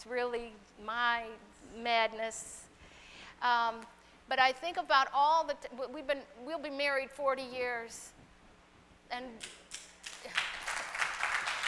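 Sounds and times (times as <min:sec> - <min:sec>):
speech: 0:00.0 - 0:02.7, 0:03.4 - 0:08.2, 0:09.1 - 0:09.6
audience applause: 0:10.2 - 0:11.6.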